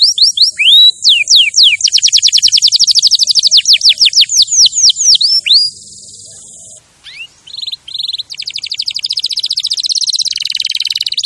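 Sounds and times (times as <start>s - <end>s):
champion canary singing fast descending whistled sweeps: 0.0s - 11.2s.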